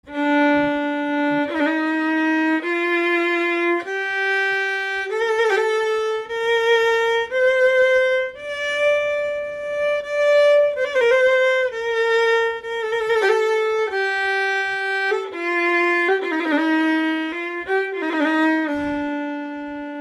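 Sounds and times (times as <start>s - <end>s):
violin playing maqam bayati on D: 0.0s - 19.9s.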